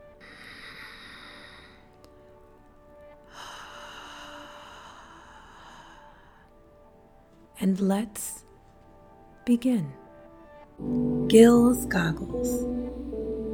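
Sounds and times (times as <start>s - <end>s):
quiet hiss: 0.0s - 13.5s
deep breath: 0.2s - 2.0s, 3.3s - 6.7s
speech: 7.6s - 8.4s, 9.5s - 10.0s, 10.8s - 13.0s.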